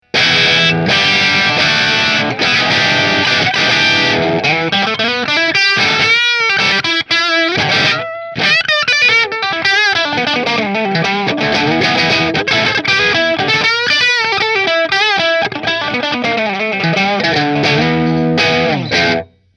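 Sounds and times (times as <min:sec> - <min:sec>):
guitars: 0:00.0 - 0:19.5.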